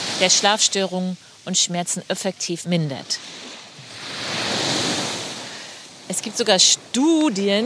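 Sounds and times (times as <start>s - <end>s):
sea wave surging onto the beach: 0.0s - 2.2s, 2.8s - 7.6s
speech: 0.2s - 3.5s, 6.1s - 7.6s.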